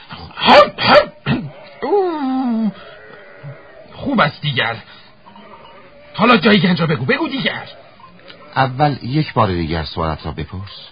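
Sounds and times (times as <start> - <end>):
person imitating a dog barking and howling: 0.4 - 2.8
speech: 4.2 - 5.0, 6.2 - 7.8, 8.6 - 10.9.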